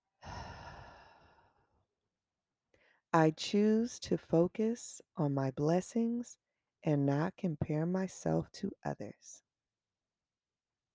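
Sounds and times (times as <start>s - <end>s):
deep breath out after breathing in through the nose: 0.2s - 1.7s
speech: 3.1s - 9.4s.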